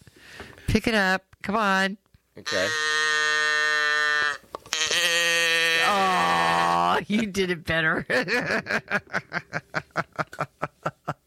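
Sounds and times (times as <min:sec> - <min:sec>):
speech: 0:00.7 - 0:02.9, 0:07.0 - 0:10.7
person imitating a cow mooing: 0:02.4 - 0:07.0
laughter: 0:06.8 - 0:11.2.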